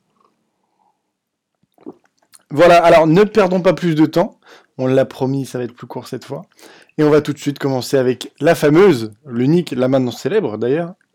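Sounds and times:
sipping herbal tea from a cup: 1.7 - 2.5
wet mouth and swallowing noises: 1.7 - 2.5
speech: 2.5 - 11.0.

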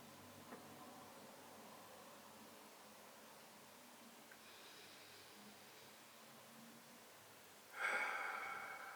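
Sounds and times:
soft airy inhale during a calming breathing exercise: 4.3 - 6.2, 7.7 - 8.9
rushing exhale during a calming breathing exercise: 7.8 - 8.9.

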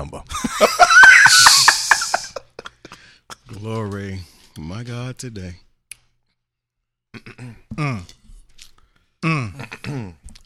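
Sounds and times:
speech: 0.0 - 1.4, 4.8 - 5.7, 7.1 - 8.2
laughter: 0.3 - 2.9
person clearing throat after eating spicy food: 7.1 - 8.1, 9.2 - 10.3.

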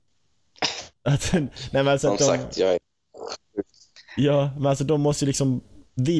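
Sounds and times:
sneeze: 0.6 - 1.0
speech: 1.0 - 3.4, 4.2 - 6.1.

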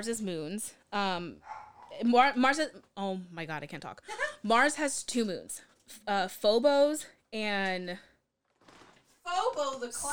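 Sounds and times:
speech: 0.0 - 8.1, 9.3 - 10.1
dog barking and yelping: 1.4 - 2.0.

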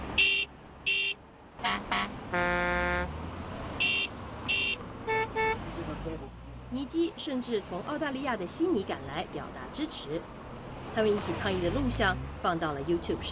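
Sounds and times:
passing car horns honking: 0.0 - 3.2, 3.8 - 5.6
steady outdoor traffic rumble: 0.0 - 13.3
speech: 6.9 - 10.4, 11.0 - 13.3.

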